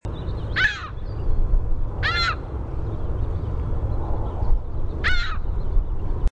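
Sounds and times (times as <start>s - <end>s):
low rumble: 0.1s - 6.3s
Ring-billed gull calls: 0.6s - 1.0s, 2.0s - 2.5s, 5.0s - 5.5s.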